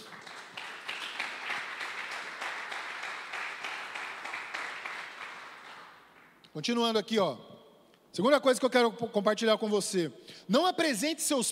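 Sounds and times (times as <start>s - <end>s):
audience applause during a sermon: 0.0s - 6.3s
speech: 6.6s - 7.5s, 8.2s - 11.5s.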